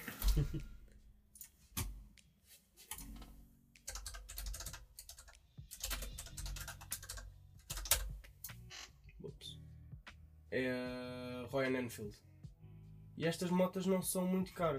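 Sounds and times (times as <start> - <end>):
speech: 0.4 - 0.8, 10.5 - 12.3, 13.2 - 14.7
typing on a computer keyboard: 3.8 - 8.1.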